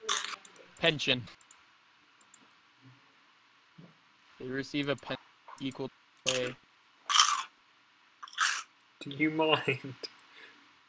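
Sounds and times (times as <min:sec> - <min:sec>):
speech: 0:00.8 - 0:01.4, 0:04.4 - 0:06.6, 0:09.0 - 0:10.1
person biting and crunching dry ramen noodles: 0:07.1 - 0:07.5, 0:08.2 - 0:08.7.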